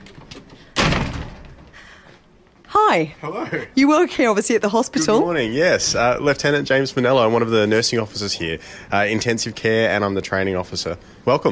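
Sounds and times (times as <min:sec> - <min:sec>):
faint noise: 0:00.0 - 0:11.5
side door slamming shut with a loud bang: 0:00.8 - 0:01.7
speech: 0:02.7 - 0:11.5.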